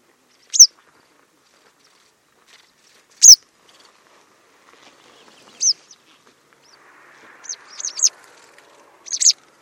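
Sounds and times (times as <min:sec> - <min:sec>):
white wagtail calls: 0:00.3 - 0:00.7, 0:04.9 - 0:09.5.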